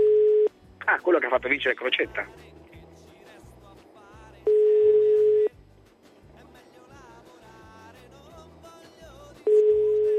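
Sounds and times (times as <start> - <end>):
telephone line tone on an unanswered call: 0.0 - 0.5, 4.5 - 5.5, 9.5 - 10.1
speech: 1.1 - 2.5.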